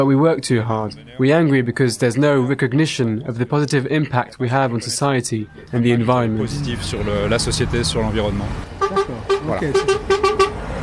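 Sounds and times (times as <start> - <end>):
speech: 0.0 - 10.3
road traffic: 5.1 - 10.8
car horns honking in support of protesting farmers: 8.6 - 10.8.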